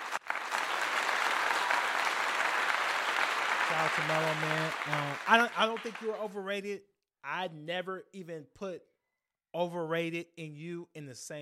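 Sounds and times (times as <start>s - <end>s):
crowd applauding: 0.0s - 6.4s
speech: 3.8s - 8.9s, 9.5s - 11.3s.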